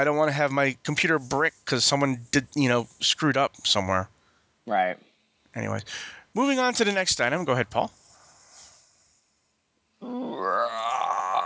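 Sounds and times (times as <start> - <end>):
speech: 0.0 - 8.0
giant movie monster roar sound effect: 10.0 - 11.4.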